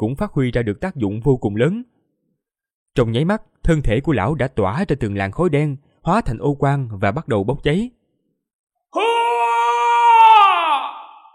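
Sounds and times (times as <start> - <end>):
speech: 0.0 - 2.0, 3.0 - 8.0
loud wailing howl from a single voice: 9.0 - 11.3.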